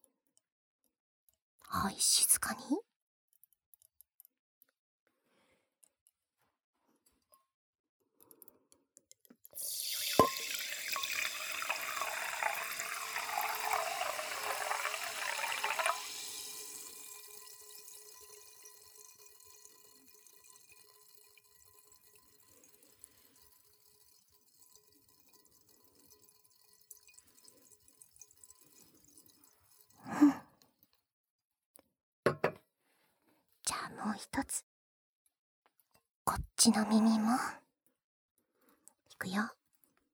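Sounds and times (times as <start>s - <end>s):
speech: 1.7s - 2.8s, 34.0s - 34.7s, 36.6s - 37.6s, 39.2s - 39.6s
wine glass clink: 9.6s - 30.1s
liquid pouring into a good wine glass: 9.6s - 30.2s.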